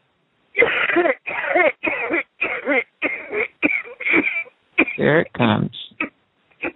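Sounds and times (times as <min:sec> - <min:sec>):
deep harsh coughing from the belly: 0:00.6 - 0:05.2, 0:06.0 - 0:06.7
speech: 0:01.0 - 0:01.2, 0:05.0 - 0:05.8.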